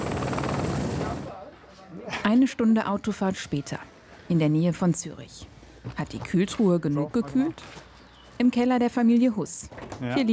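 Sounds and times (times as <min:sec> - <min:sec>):
helicopter rotor chopping with engine roar: 0:00.0 - 0:01.4
speech: 0:02.3 - 0:10.3.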